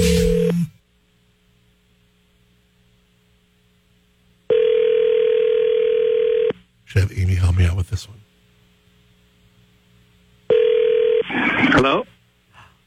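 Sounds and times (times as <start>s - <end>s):
steady loud phone tone: 0.0s - 0.8s, 4.5s - 6.6s, 10.5s - 11.3s
telephone dial tone: 4.5s - 6.5s, 10.5s - 11.3s
speech: 6.9s - 8.3s, 11.8s - 12.1s.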